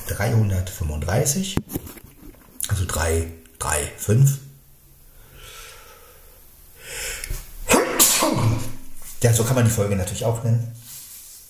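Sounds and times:
speech: 0.1 - 2.0, 2.7 - 4.4, 9.2 - 10.9
person sneezing: 7.6 - 8.8.

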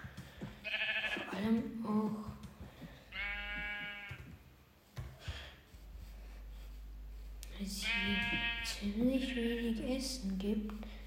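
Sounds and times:
soft thuds and shuffling noises: 0.0 - 8.6
sheep bleating: 0.6 - 1.4, 3.1 - 4.2, 7.8 - 8.7
speech: 1.4 - 2.3, 8.9 - 11.0.

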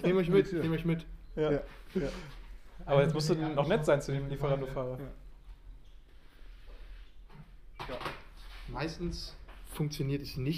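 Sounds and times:
speech: 0.0 - 5.2, 7.9 - 10.5
front door opening: 7.4 - 8.4.

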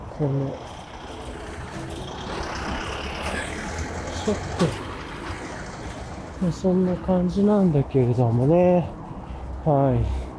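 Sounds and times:
busy traffic: 0.0 - 10.3
speech: 0.2 - 0.8, 4.2 - 4.8, 6.4 - 9.0, 9.6 - 10.2
low-riding car passing by on the road: 0.2 - 8.4.

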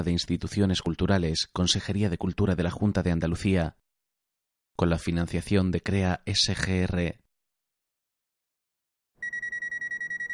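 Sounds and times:
speech: 0.0 - 3.8, 4.8 - 7.2
electronic alarm clock ringing: 9.2 - 10.3.

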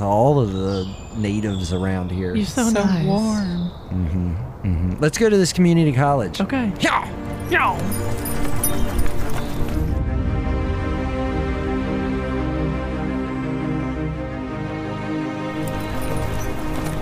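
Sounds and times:
speech: 0.0 - 8.9
dense sustained tonal backdrop: 0.0 - 17.0
horse hooves clip-clopping in a trotting rhythm: 7.3 - 10.0, 15.5 - 17.0.

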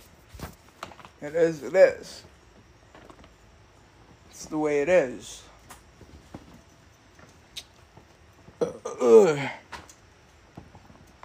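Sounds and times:
speech: 1.2 - 2.3, 4.4 - 5.5, 9.0 - 9.6
loud drawn-out burp: 8.6 - 9.6.

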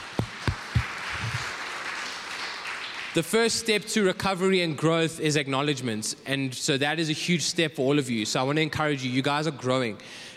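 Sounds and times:
crowd applause: 0.0 - 3.3
loud distinct claps: 0.0 - 3.3
speech: 3.2 - 10.3.

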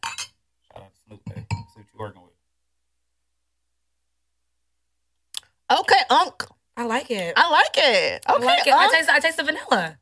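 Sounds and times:
glasses clinking together in a toast: 0.0 - 0.4, 1.3 - 1.8
speech: 2.0 - 2.2, 5.8 - 10.0.

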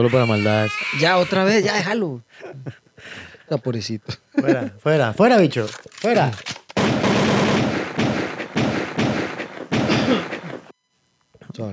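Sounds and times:
speech: 0.0 - 7.1, 11.6 - 11.7
gunfire bursts: 6.8 - 10.7.

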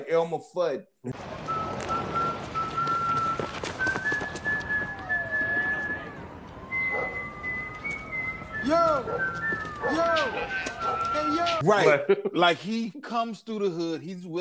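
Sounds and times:
speech: 0.0 - 1.3, 11.2 - 14.4
noisy bustling background: 1.2 - 11.6
person whistling a simple sing-song nursery rhyme tune: 1.5 - 11.6.

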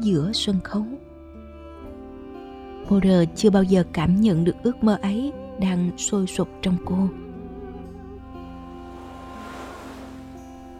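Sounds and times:
speech: 0.0 - 1.0, 2.9 - 7.2
sustained tonal music humming: 0.1 - 10.7
ocean waves on a beach in the morning: 8.5 - 10.7.

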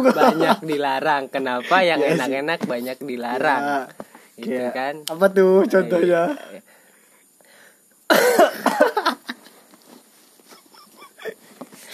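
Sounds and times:
laughter: 0.0 - 0.8
speech: 0.0 - 6.7, 8.1 - 9.0
person coughing: 8.1 - 9.0.

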